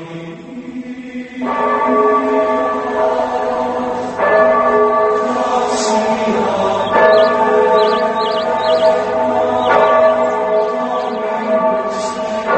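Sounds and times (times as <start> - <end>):
monastery church bells rung by a monk: 1.4 - 12.5
high bell chimes: 5.8 - 11.9.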